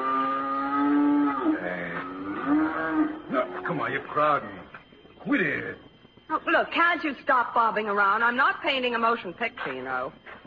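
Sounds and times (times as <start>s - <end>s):
cows mooing: 0.0s - 4.1s
speech: 3.9s - 10.4s.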